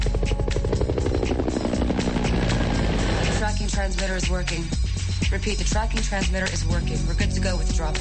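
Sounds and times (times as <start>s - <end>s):
helicopter flying overhead with rotor blades thudding: 0.0s - 3.9s
speech: 4.2s - 7.9s.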